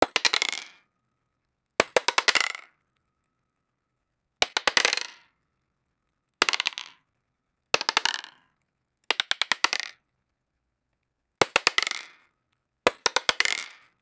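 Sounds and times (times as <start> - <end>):
futuristic board game dice roll: 0.0 - 0.8, 1.8 - 2.7, 4.4 - 5.3, 6.4 - 7.0, 7.8 - 8.4, 9.1 - 10.0, 11.4 - 12.3, 12.9 - 14.0.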